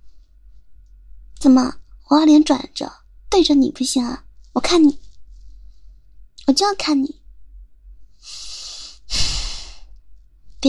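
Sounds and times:
speech: 1.4 - 5.0, 6.5 - 7.2
person breathing heavily: 8.2 - 9.9.

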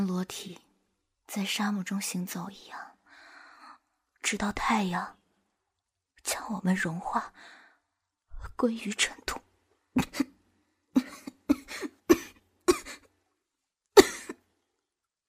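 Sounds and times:
speech: 0.1 - 0.7, 1.3 - 2.9, 4.3 - 5.2, 6.2 - 7.6, 8.5 - 10.3
person coughing up a little blood: 11.0 - 13.1, 14.0 - 14.4.

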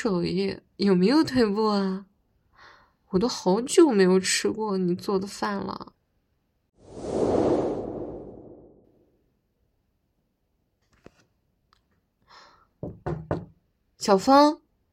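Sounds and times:
speech: 0.0 - 2.1, 3.1 - 6.0, 12.8 - 14.6
loud whooshing rush: 6.8 - 8.9
quick loud knocks on a door: 12.8 - 13.6.

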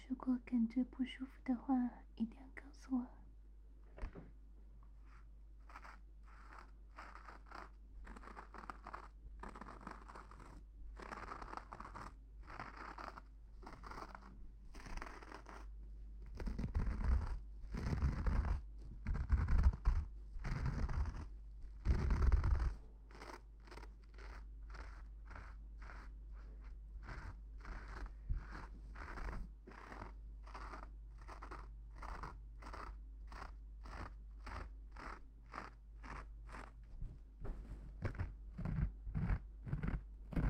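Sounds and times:
speech: 0.1 - 3.2
razor scraping a face covered in shaving foam: 5.1 - 36.8, 38.0 - 40.4.

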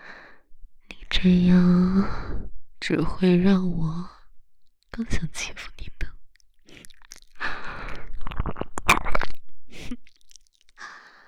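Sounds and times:
breathing: 0.0 - 0.5, 6.6 - 8.1, 10.8 - 11.2
speech: 1.2 - 4.1, 4.9 - 5.9
wet kissing on the mouth: 6.4 - 11.0.

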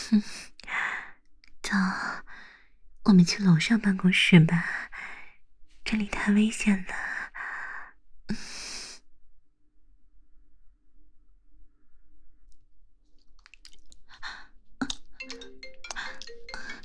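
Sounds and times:
speech: 0.1 - 0.5, 1.7 - 2.3, 3.0 - 4.9, 5.8 - 7.1
phone ringtone of incoming call: 15.2 - 16.8.

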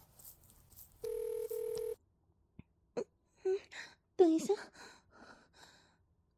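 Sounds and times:
phone ringing with incoming call: 1.0 - 2.0
speech: 4.2 - 5.0.

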